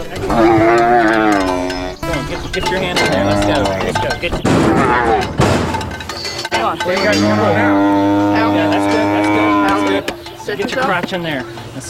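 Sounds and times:
steer mooing: 0.2s - 4.0s, 4.6s - 5.4s, 7.0s - 10.1s
speech: 6.9s - 7.9s, 10.5s - 11.8s.

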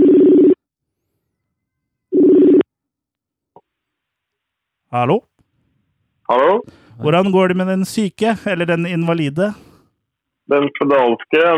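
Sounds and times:
phone ringback tone while calling someone: 0.0s - 0.6s, 1.4s - 2.7s
speech: 4.9s - 5.3s, 6.3s - 9.7s, 10.5s - 11.5s.

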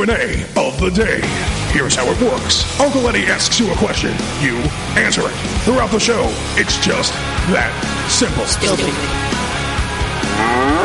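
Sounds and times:
speech: 0.0s - 9.4s
cow mooing: 10.3s - 10.8s.

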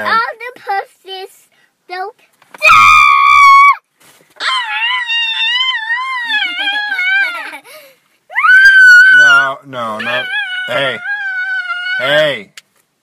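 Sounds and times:
speech: 0.0s - 0.4s
children screaming shrilly: 2.6s - 3.8s, 4.4s - 7.6s, 8.3s - 12.3s.

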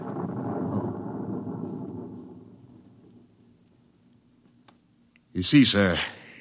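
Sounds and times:
distant explosion rumbling through concrete: 0.0s - 3.6s
speech: 5.4s - 6.2s.

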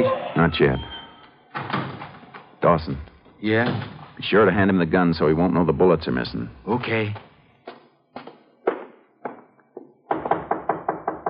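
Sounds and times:
speech: 0.4s - 0.9s, 2.6s - 7.3s
knocking on a door: 8.7s - 11.2s.

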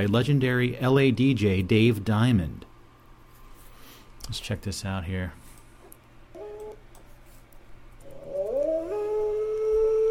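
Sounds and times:
speech: 0.0s - 2.7s, 4.3s - 5.4s
low hum: 0.0s - 10.1s
wolf howl: 8.0s - 10.1s.

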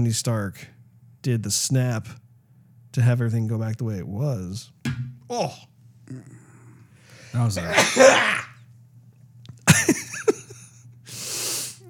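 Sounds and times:
speech: 0.0s - 2.2s, 2.9s - 6.4s, 7.3s - 8.4s
person sneezing: 7.6s - 8.6s
laughter: 9.7s - 10.7s
hissing exhale or sniff: 11.1s - 11.8s.

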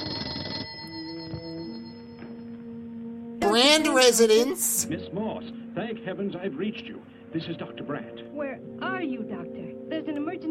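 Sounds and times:
telephone bell ringing: 0.0s - 2.2s
speech: 3.6s - 10.4s.

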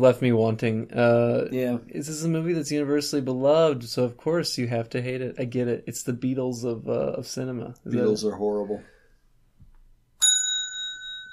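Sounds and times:
speech: 0.0s - 8.9s
bicycle bell ringing: 10.2s - 11.3s.

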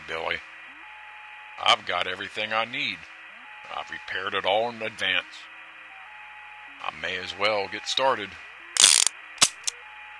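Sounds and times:
speech: 1.9s - 5.5s, 6.8s - 8.5s
revolver hammer being cocked with metallic ratcheting and clicks: 8.8s - 9.7s.

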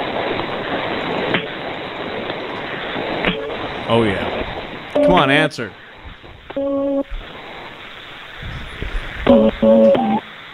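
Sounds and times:
faint phone line hiss: 0.0s - 10.5s
speech: 3.9s - 4.3s, 5.0s - 5.8s
electronic telephone dialing tones through a phone line for a prank call: 6.6s - 7.1s, 9.3s - 10.2s.

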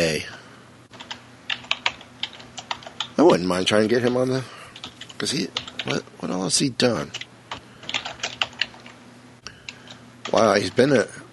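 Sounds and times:
speech: 0.0s - 0.4s, 3.2s - 4.6s, 5.2s - 7.2s, 10.3s - 11.2s
typing on a computer keyboard: 0.9s - 3.2s, 4.8s - 6.0s, 7.1s - 9.0s.

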